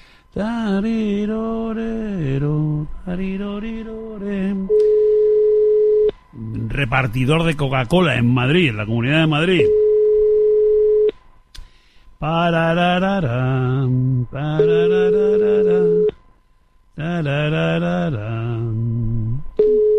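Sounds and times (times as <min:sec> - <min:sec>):
speech: 0:00.4 - 0:04.9, 0:06.8 - 0:09.8, 0:12.2 - 0:16.1, 0:17.0 - 0:19.0
outgoing phone call ringing tone through the earpiece: 0:04.7 - 0:06.1, 0:09.4 - 0:11.1, 0:14.6 - 0:16.1, 0:19.6 - 0:19.9.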